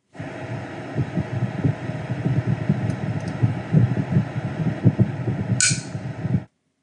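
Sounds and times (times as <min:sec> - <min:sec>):
constant low hum: 0:00.0 - 0:06.5
heartbeat-like throbbing: 0:00.2 - 0:06.5.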